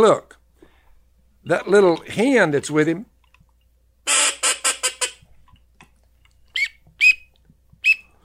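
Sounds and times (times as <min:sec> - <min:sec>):
speech: 0:00.0 - 0:00.3, 0:01.4 - 0:03.1
teal drake whistles blown on a duck call: 0:04.1 - 0:05.2, 0:06.6 - 0:08.1.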